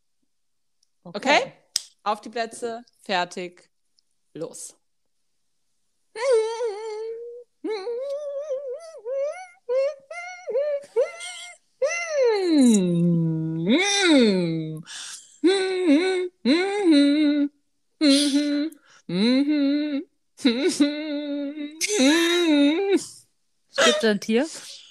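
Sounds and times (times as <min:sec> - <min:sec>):
speech: 0:01.0 - 0:03.7, 0:04.4 - 0:04.8, 0:12.6 - 0:14.5, 0:24.0 - 0:24.7
person humming a pop song melody for a song-guessing game: 0:06.2 - 0:24.1.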